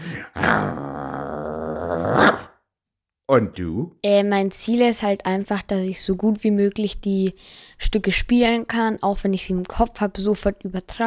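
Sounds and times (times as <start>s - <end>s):
human voice imitating an angry dog's growl: 0.0s - 2.5s
speech: 0.3s - 0.8s, 3.4s - 11.0s.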